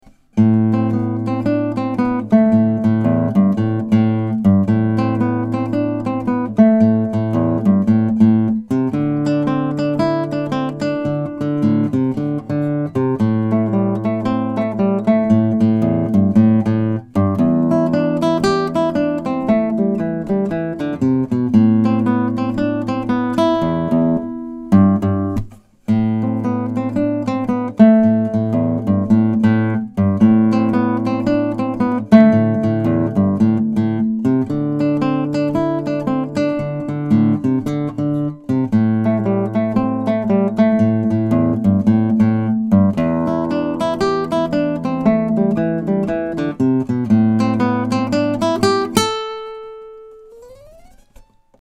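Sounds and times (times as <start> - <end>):
guitar playing: 0.0 - 51.5.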